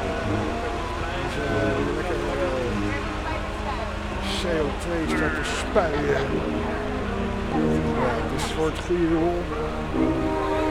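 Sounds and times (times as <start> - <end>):
laughter: 0.0 - 10.6
old Volvo diesel tractor engine running: 0.0 - 10.6
speech: 4.5 - 6.8, 7.6 - 10.4.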